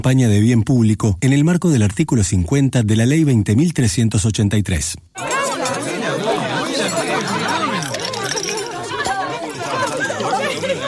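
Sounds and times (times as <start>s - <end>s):
speech: 0.0s - 7.7s
dense chatter of many voices at a dinner: 5.2s - 10.8s
light clinks of dishes and glasses at a dinner: 5.2s - 10.8s
laughter at a dinner: 5.6s - 10.8s.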